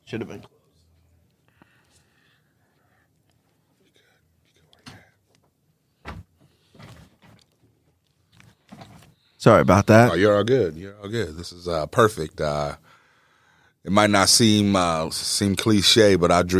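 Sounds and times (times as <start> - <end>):
speech: 0.1 - 0.6, 9.4 - 13.0, 13.8 - 16.5
door being shut: 6.0 - 6.3.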